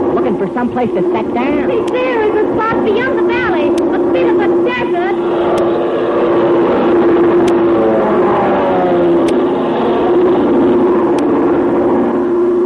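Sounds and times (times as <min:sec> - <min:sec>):
Chinese army plane engine droning overhead: 0:00.0 - 0:12.6
speech: 0:00.4 - 0:07.2.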